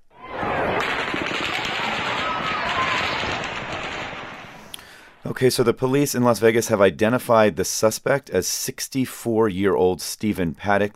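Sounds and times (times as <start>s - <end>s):
rapid automatic-weapon gunfire at the scene of a mass shooting: 0.4s - 4.7s
speech: 5.4s - 10.9s.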